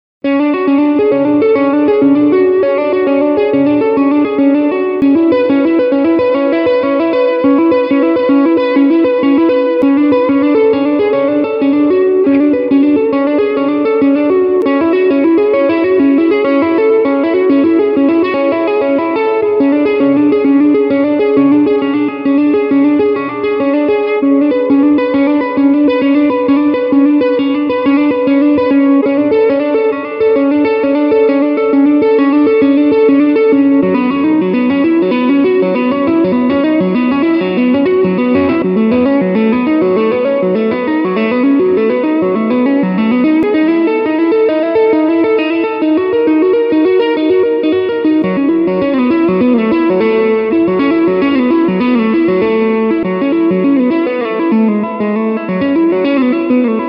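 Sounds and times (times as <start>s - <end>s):
finger tapped arpeggios: 0.2s - 56.8s.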